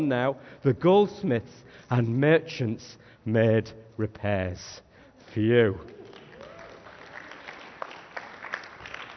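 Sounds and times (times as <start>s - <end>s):
speech: 0.0s - 6.0s
audience applauding a reading: 5.8s - 9.1s.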